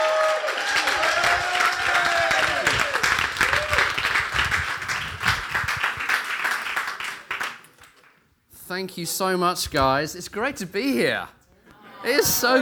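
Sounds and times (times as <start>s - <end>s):
crowd cheers and whoops: 0.0s - 4.2s
crowd applause: 0.0s - 7.6s
speech: 8.8s - 11.4s, 12.0s - 12.5s.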